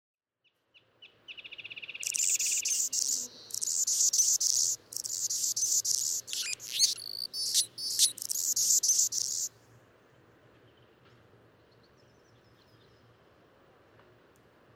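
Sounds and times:
Anna's hummingbird song: 0:01.4 - 0:09.5.

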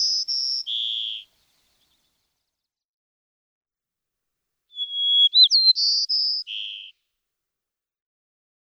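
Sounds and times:
White-crowned sparrow singing: 0:00.0 - 0:02.1, 0:04.8 - 0:06.9.

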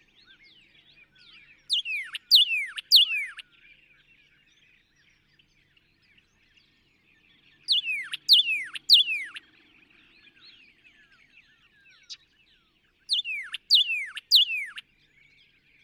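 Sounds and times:
northern cardinal whistling down-slurred notes: 0:01.7 - 0:03.4, 0:07.7 - 0:09.4, 0:13.1 - 0:14.8.

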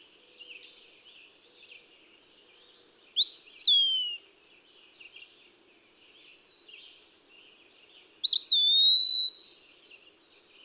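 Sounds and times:
eastern wood-pewee whistled song: 0:03.2 - 0:04.2, 0:08.2 - 0:09.5.

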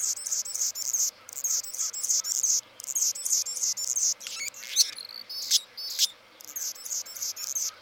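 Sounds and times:
Anna's hummingbird giving grating high-pitched buzzy phrases: 0:00.0 - 0:07.7.

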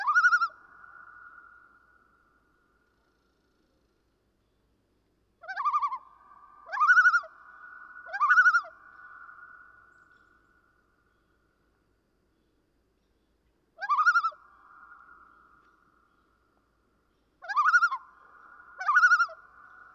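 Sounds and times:
Common loon calling: 0:00.0 - 0:01.6, 0:05.4 - 0:09.6, 0:13.8 - 0:15.8, 0:17.4 - 0:19.9.

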